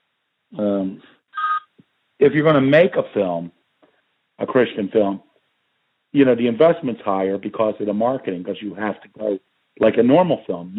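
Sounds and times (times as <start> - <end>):
speech: 0.5 - 1.2, 2.2 - 3.6, 4.4 - 5.3, 6.1 - 10.7
electronic phone keypad tones as a phone is switched off: 1.4 - 1.7.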